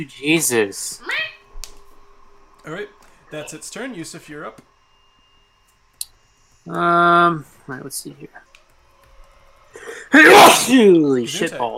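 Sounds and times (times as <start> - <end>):
speech: 0.0 - 1.3, 2.6 - 4.7, 6.6 - 8.5, 10.1 - 11.7
man's startled exclamation: 10.1 - 11.2
loud explosive sneeze: 10.2 - 10.8.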